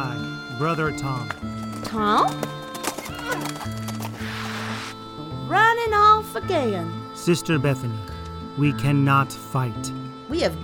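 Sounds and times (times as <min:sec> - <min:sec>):
speech: 0:00.0 - 0:02.6, 0:03.3 - 0:03.9, 0:05.5 - 0:10.6
horse hooves clip-clopping: 0:01.2 - 0:04.3
horse with a rider neighing in a drawn-out whinny: 0:02.2 - 0:05.0.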